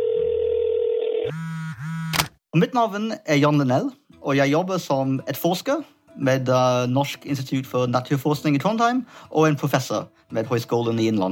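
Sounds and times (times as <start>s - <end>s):
steady electronic phone tone: 0.0s - 1.5s
speech: 2.6s - 11.2s.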